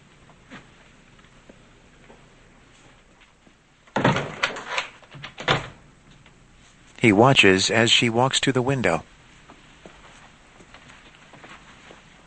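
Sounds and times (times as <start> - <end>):
hotel room door closing: 3.9 - 5.8
speech: 7.0 - 9.1.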